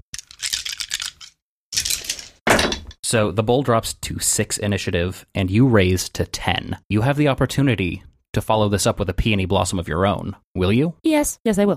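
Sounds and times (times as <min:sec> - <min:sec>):
dice clattering on a hard surface: 0:00.2 - 0:03.0
speech: 0:03.1 - 0:11.7.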